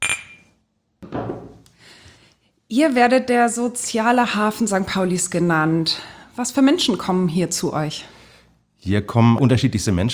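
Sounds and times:
glasses clinking in a toast at a café: 0.0s - 0.6s
speech: 2.7s - 8.2s, 8.8s - 10.1s.

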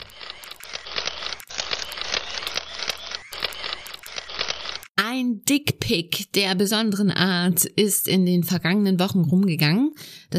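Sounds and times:
camera shutters clicking: 0.0s - 4.9s
speech: 5.4s - 10.3s.

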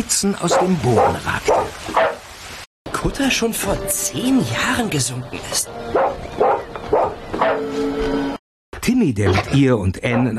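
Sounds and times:
speech: 0.0s - 2.1s, 3.0s - 6.2s, 7.5s - 10.3s
dog barking loudly while jumping at a window: 0.5s - 2.2s, 5.9s - 7.6s.

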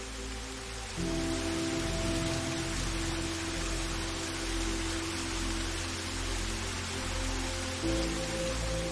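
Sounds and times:
waterfall rushing: 0.0s - 8.9s.

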